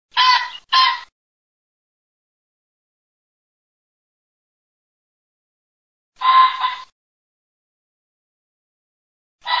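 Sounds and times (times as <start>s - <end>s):
pheasant calling: 0.1s - 1.1s, 6.2s - 6.9s.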